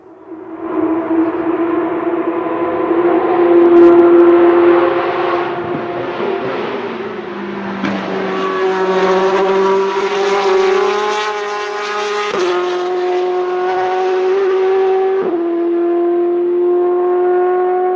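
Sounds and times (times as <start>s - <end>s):
car engine accelerating and shifting gears: 0.2s - 17.9s.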